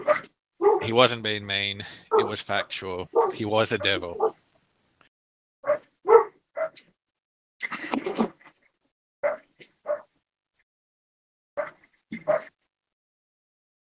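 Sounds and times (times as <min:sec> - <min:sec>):
caged dog barking beside a house during a storm: 0:00.0 - 0:00.9, 0:02.1 - 0:02.4, 0:03.1 - 0:04.4, 0:05.6 - 0:06.8, 0:09.2 - 0:10.1, 0:11.6 - 0:12.6
speech: 0:00.8 - 0:04.4.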